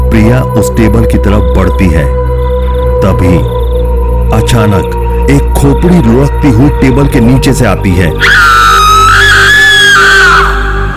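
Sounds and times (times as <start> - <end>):
speech: 0.1 - 2.2, 3.0 - 3.6, 4.3 - 8.5
woman screaming loudly: 8.2 - 10.9.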